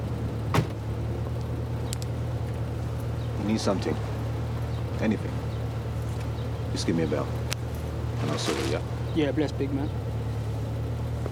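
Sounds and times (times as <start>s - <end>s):
car engine hum of a car drawing up outside a prison: 0.0s - 11.3s
short thump: 0.5s - 1.0s
faint higher clicks: 1.4s - 2.2s
speech: 3.5s - 4.1s, 5.0s - 5.5s, 6.7s - 7.5s, 8.2s - 10.1s.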